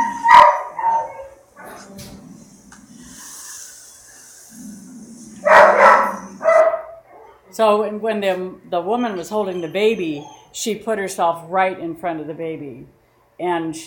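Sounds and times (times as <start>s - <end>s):
dog growling and snarling: 4.5s - 6.5s
speech: 7.6s - 13.8s.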